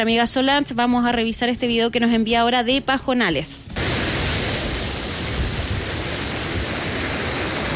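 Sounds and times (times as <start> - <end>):
speech: 0.0 - 3.8
strong water rushing through a ravine stream: 3.8 - 7.7.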